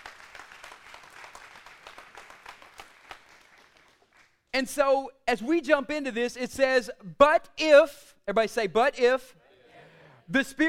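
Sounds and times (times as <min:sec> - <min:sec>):
crowd applauding: 0:00.0 - 0:04.4
speech: 0:04.6 - 0:09.4, 0:10.3 - 0:10.6.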